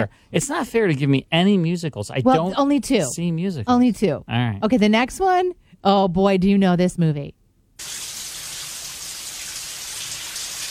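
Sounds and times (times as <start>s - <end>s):
speech: 0.0s - 8.0s
shower water running: 7.8s - 10.6s.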